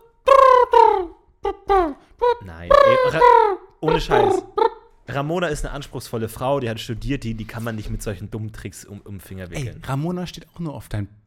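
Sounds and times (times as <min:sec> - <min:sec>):
human voice imitating pigeon cooing: 0:00.0 - 0:04.8
speech: 0:02.4 - 0:11.2.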